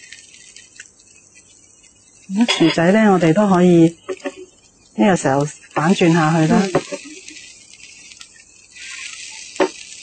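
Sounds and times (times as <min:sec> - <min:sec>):
plant-based steak and potatoes sizzling in a pan: 0:00.0 - 0:10.0
speech: 0:02.3 - 0:04.0, 0:05.0 - 0:06.8.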